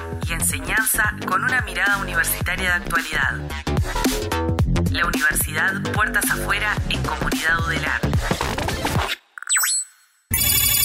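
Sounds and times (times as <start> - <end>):
music: 0.0 - 9.3
speech: 0.2 - 9.2
incoming-call ringtone effect electronic blips: 9.4 - 10.8.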